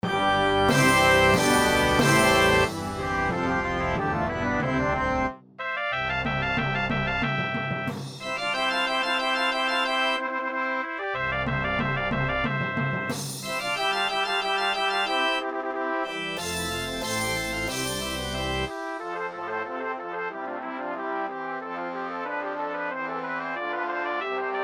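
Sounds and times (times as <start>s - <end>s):
drums: 0.0s - 4.1s, 6.2s - 8.6s, 11.6s - 14.1s, 16.2s - 19.1s
organ: 0.0s - 5.3s, 6.0s - 10.4s, 11.2s - 19.3s
brass: 0.0s - 24.6s
cymbals: 0.6s - 3.2s, 13.1s - 14.0s, 16.2s - 19.1s.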